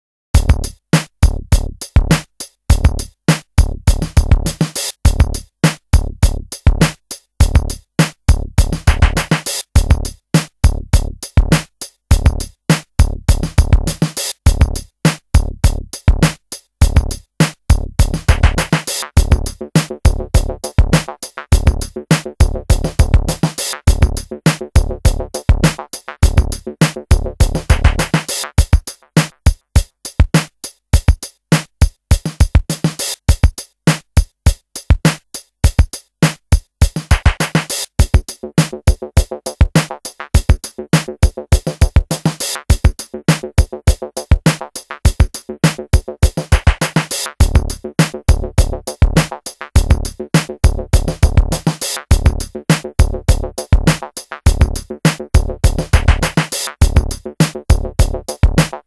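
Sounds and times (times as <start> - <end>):
DMX drum machine jam: 0.4 - 58.8.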